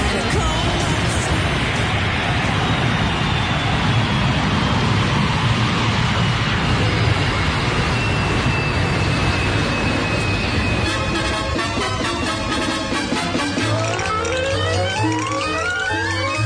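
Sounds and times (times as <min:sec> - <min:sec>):
music: 0:00.0 - 0:02.0, 0:10.7 - 0:16.4
airplane jet roar with descending whine: 0:00.0 - 0:16.4.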